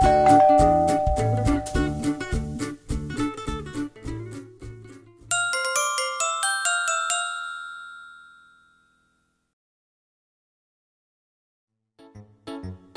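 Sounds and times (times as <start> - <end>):
bright ringing ding-dong bell chimes: 0.0 - 2.0, 5.3 - 9.3
bouncy tune with rhythmic plucked notes: 0.0 - 7.7.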